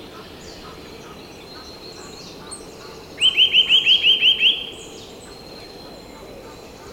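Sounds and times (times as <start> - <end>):
Eurasian nuthatch Sitta europaea calling with upslurred piping whistles: 3.2 - 4.8.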